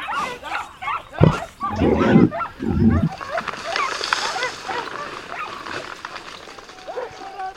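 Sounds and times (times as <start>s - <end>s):
hunting dogs barking and yelping while chasing a boar: 0.0s - 6.0s, 6.7s - 7.5s
noisy scramble: 1.2s - 3.3s.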